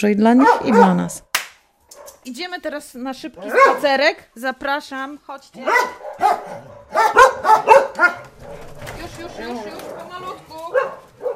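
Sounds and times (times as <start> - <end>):
speech: 0.0 - 1.3, 2.2 - 11.0
dogs barking in a house: 0.2 - 1.2, 1.9 - 2.3, 3.3 - 4.0, 5.6 - 11.3.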